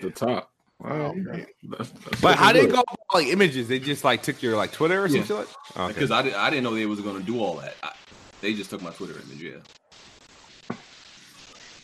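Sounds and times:
speech: 0:00.0 - 0:10.1
crackling static hiss on a microphone: 0:02.0 - 0:11.8
sharp pop: 0:10.6 - 0:10.9.

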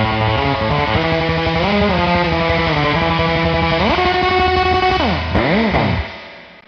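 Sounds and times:
electric guitar played through a drippy reverb pedal: 0:00.0 - 0:06.6.

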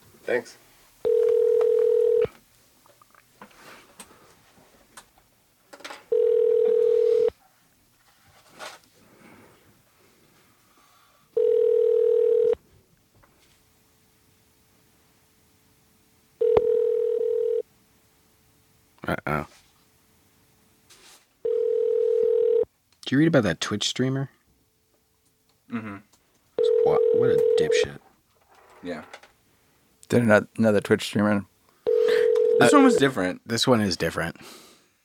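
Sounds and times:
faint rustle: 0:00.0 - 0:14.0, 0:18.9 - 0:22.4, 0:24.2 - 0:34.1
speech: 0:00.3 - 0:00.6, 0:23.2 - 0:24.4, 0:30.1 - 0:31.5, 0:32.6 - 0:34.6
phone line ringback tone: 0:01.0 - 0:02.4, 0:06.1 - 0:07.3, 0:11.4 - 0:12.6, 0:16.4 - 0:17.6, 0:21.4 - 0:22.7, 0:26.6 - 0:27.9, 0:31.8 - 0:33.0.

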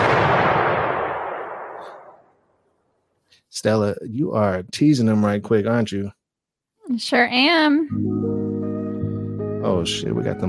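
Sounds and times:
explosion sound effect with rumbling boom: 0:00.0 - 0:02.3
speech: 0:03.5 - 0:06.2, 0:06.9 - 0:08.6, 0:09.6 - 0:10.4.

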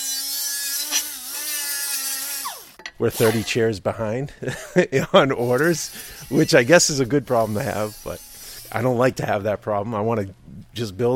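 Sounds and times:
welder buzzing and crackling on an aluminum wheelchair frame in a workshop: 0:00.0 - 0:03.6, 0:05.4 - 0:09.3
speech: 0:03.0 - 0:11.1.

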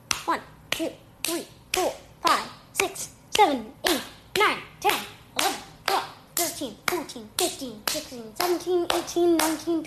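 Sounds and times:
speech: 0:00.3 - 0:05.0, 0:06.6 - 0:09.8
sharp hand claps with short echoes: 0:03.8 - 0:09.8.

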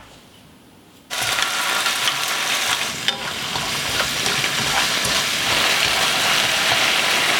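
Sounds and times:
scraping as the crab omelette is stirred: 0:01.1 - 0:07.2.

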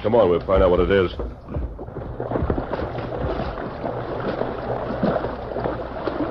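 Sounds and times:
speech: 0:00.0 - 0:01.6
splashing and sloshing of someone wading through a river: 0:00.2 - 0:06.2
fast river water rushing: 0:01.4 - 0:06.2.

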